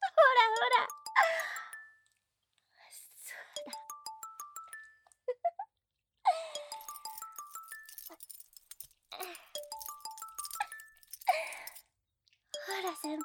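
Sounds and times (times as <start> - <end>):
phone ringtone of an incoming call: 0.6 - 2.0, 3.6 - 5.0, 6.4 - 8.4, 9.5 - 11.3, 12.6 - 13.2.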